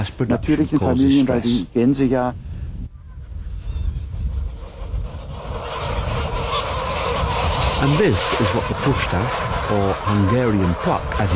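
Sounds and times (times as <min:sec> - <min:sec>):
speech: 0:00.0 - 0:02.5, 0:07.8 - 0:11.3
broadband wind or rumble noise: 0:00.0 - 0:11.3
large flock of geese honking and cackling: 0:03.6 - 0:11.3.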